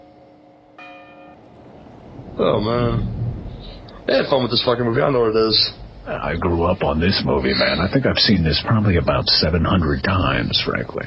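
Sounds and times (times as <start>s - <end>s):
church bell ringing with bright sustained metallic tones: 0.0s - 2.4s
speech: 2.4s - 3.2s, 4.0s - 11.0s.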